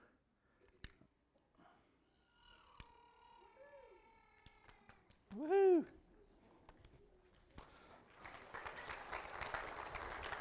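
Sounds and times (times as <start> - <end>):
small group applauding a child lighting a candle: 4.4 - 5.5, 7.5 - 10.3
speech: 5.4 - 6.0.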